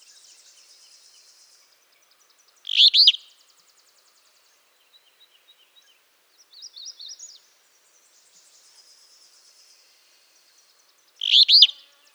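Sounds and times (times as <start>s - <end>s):
Northern Beardless-Tyrannulet singing high wavering notes: 0.0s - 12.1s.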